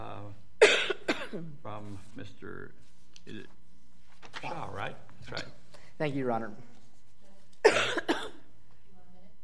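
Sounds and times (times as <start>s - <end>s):
harsh coughs: 0.6s - 1.6s, 7.6s - 8.4s
speech: 1.3s - 3.6s, 4.2s - 6.7s.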